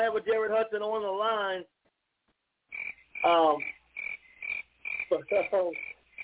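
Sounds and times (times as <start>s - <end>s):
speech: 0.0s - 1.8s, 3.2s - 3.8s, 5.1s - 5.9s
crickets chirping: 2.7s - 6.2s
deeper croaking calls: 2.7s - 6.2s.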